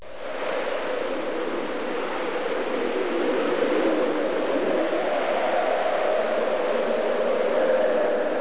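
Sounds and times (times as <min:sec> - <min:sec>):
winter wind: 0:00.0 - 0:08.3.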